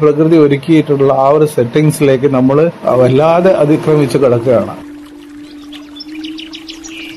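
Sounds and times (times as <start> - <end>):
speech: 0.0 - 4.9
steady low hum: 3.3 - 7.1
migratory bird chirping and twittering: 5.0 - 7.1.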